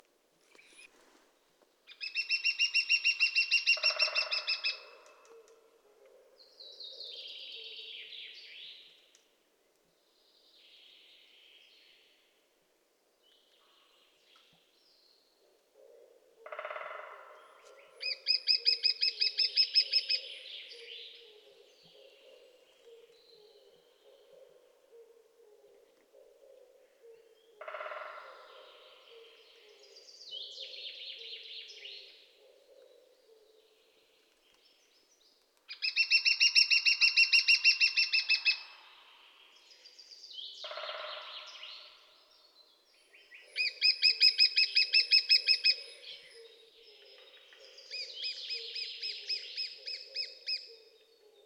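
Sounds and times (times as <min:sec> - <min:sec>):
lesser spotted woodpecker call: 0:01.9 - 0:05.6, 0:16.4 - 0:20.3, 0:24.0 - 0:29.9, 0:35.7 - 0:38.9, 0:40.6 - 0:42.1, 0:43.5 - 0:51.4.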